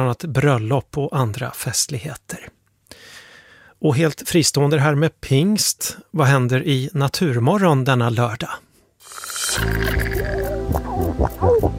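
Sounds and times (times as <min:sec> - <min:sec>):
speech: 0:00.0 - 0:03.1, 0:03.8 - 0:08.6, 0:09.6 - 0:10.3
steady murky underwater background: 0:09.1 - 0:11.7.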